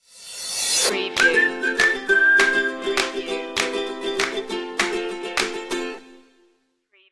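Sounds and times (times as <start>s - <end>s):
upbeat ukulele stinger: 0.9s - 6.3s.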